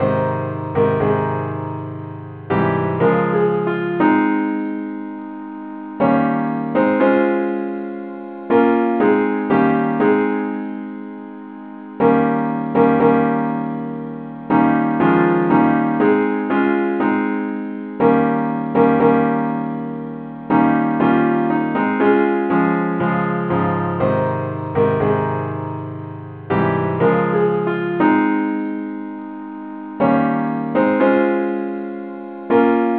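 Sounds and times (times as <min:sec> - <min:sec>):
simple accompaniment in A flat: 0:00.0 - 0:32.9.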